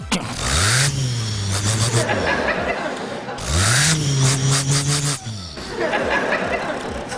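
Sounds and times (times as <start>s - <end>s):
man's voice imitating a Ford Transit van engine: 0.0s - 6.5s
laughter: 1.4s - 7.1s.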